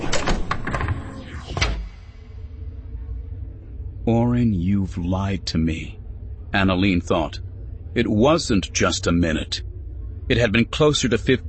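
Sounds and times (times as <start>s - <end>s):
door closing: 0.0s - 2.1s
low rumble: 0.0s - 11.4s
speech: 4.1s - 9.7s, 10.3s - 11.4s.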